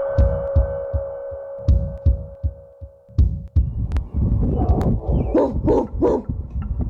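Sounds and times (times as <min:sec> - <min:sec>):
steady low thumping: 0:00.1 - 0:06.8
people imitating dog barks and yelps: 0:04.8 - 0:06.3.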